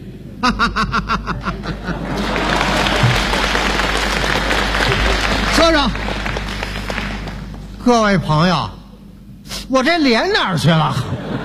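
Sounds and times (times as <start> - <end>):
speech: 0.4 - 1.7, 7.9 - 8.8, 9.7 - 11.4
audience at a crosstalk comedy show laughing: 0.4 - 7.5, 10.9 - 11.4
audience at a crosstalk comedy show applauding: 1.6 - 7.8.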